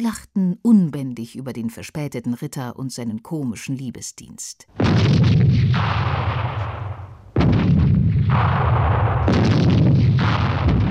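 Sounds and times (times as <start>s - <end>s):
speech: 0.0s - 6.8s, 8.3s - 9.6s
cannon fire: 4.8s - 10.8s
gunfire: 4.8s - 10.8s.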